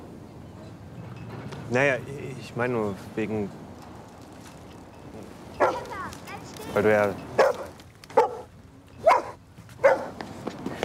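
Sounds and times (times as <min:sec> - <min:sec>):
speech: 0:01.7 - 0:03.6, 0:06.8 - 0:07.3
dog barking: 0:05.6 - 0:05.9, 0:07.4 - 0:10.2.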